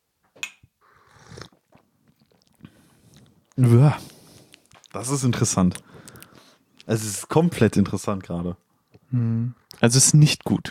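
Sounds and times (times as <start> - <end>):
wet slurping from a cup of tea during a tea tasting: 0.8 - 2.5
quiet mouth and swallowing noises: 1.0 - 6.9
speech: 3.6 - 4.1, 5.0 - 6.0, 6.9 - 10.6.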